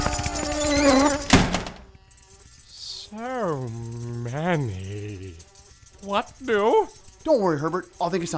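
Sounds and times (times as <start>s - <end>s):
swarm of moths buzzing: 0.0s - 8.3s
heavy door thunk: 1.0s - 2.0s
speech: 6.1s - 8.3s.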